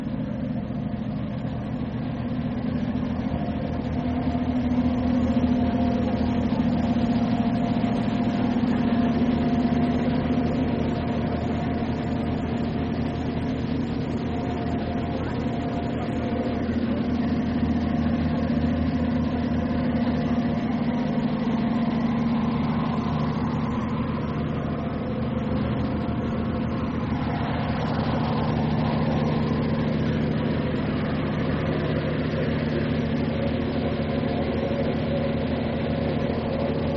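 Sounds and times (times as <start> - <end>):
ferry engine droning deep in the bottom of the ferry: 0.0 - 36.9.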